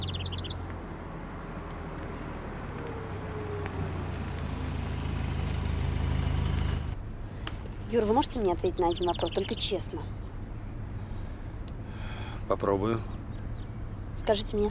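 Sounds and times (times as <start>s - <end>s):
high chirping: 0.0s - 0.6s, 8.0s - 10.8s
car engine rumbling while driving on a highway and pulling onto the roadside: 0.0s - 14.6s
speech: 7.9s - 10.2s, 12.5s - 13.2s, 14.2s - 14.6s.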